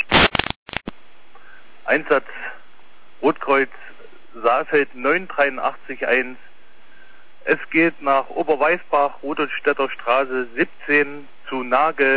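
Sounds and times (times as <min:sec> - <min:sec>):
short burst of loud noisy radio static: 0:00.1 - 0:00.9
speech: 0:02.0 - 0:02.3, 0:03.2 - 0:06.5, 0:07.5 - 0:12.1.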